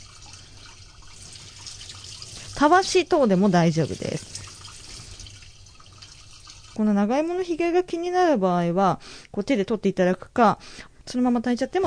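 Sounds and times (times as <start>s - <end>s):
running water splashing as a Chinese yam is washed to remove soil: 0.0s - 7.0s
speech: 2.6s - 4.3s, 6.8s - 11.8s.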